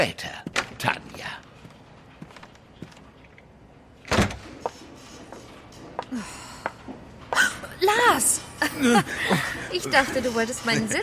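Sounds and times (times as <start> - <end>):
speech: 0.0 - 1.0, 7.9 - 11.0
door swinging shut with a solid thud: 4.1 - 4.4
laughter: 8.6 - 11.0.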